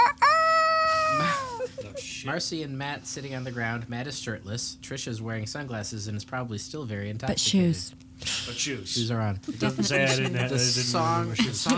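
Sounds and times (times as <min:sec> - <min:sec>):
rooster crowing: 0:00.0 - 0:01.6
laughter: 0:00.0 - 0:02.1, 0:09.4 - 0:11.7
speech: 0:02.2 - 0:11.7.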